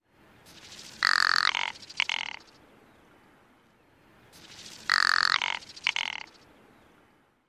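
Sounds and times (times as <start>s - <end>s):
rock ptarmigan guttural rattle: 0.5s - 2.5s, 4.3s - 6.4s.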